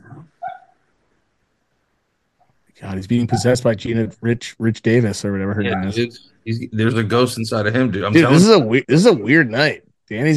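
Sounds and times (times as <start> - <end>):
speech: 2.8 - 10.3
dog whimpering and barking while dreaming: 3.2 - 3.6.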